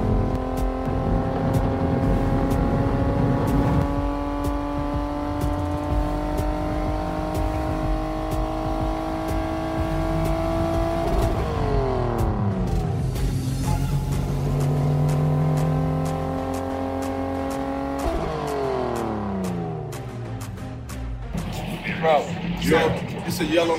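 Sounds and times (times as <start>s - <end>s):
car engine roaring accelerating hard on a race track: 0.0s - 23.7s
road and wind rumble: 0.0s - 23.7s
speech: 23.4s - 23.7s.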